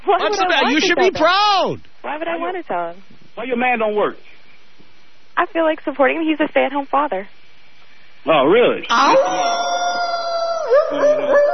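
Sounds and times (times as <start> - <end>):
speech: 0.1 - 4.3, 5.4 - 7.4, 8.2 - 9.9, 10.7 - 11.5
person imitating a dog with a howl-like yowl: 8.9 - 11.5.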